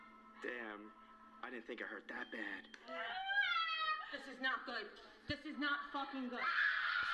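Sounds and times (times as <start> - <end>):
speech: 0.4 - 6.7
woman screaming: 2.9 - 4.2, 6.3 - 7.1.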